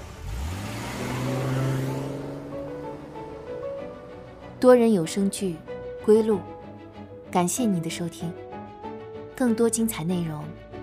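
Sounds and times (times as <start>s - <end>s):
car engine starting and revving as it pulls away on a small road: 0.0s - 7.0s
speech: 4.6s - 6.5s, 7.3s - 8.4s, 9.4s - 10.6s.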